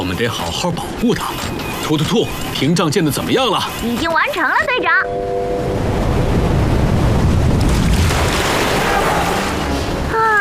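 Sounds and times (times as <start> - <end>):
speech: 0.1 - 5.9
ocean surf washing onto the sandy shore of an atoll: 5.1 - 10.2.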